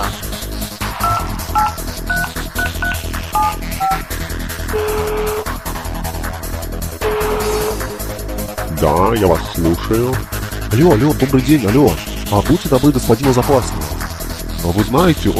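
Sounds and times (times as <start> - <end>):
steady music: 0.0 - 15.3
phone line ringing tones: 1.0 - 4.1, 4.7 - 5.5
touch-tone dialing beeps of a telephone: 1.0 - 4.1
speech: 9.1 - 13.9, 14.6 - 15.3.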